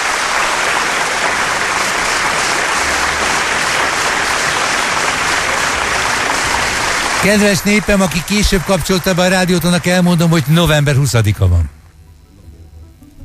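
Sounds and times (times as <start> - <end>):
sustained applause from a large crowd: 0.0 - 11.8
speech: 7.2 - 11.8.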